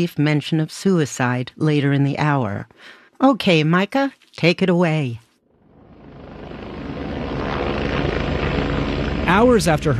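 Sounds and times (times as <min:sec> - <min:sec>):
speech: 0:00.0 - 0:05.2, 0:09.3 - 0:09.9
Coast Guard helicopter rotor thumping overhead: 0:05.8 - 0:09.9.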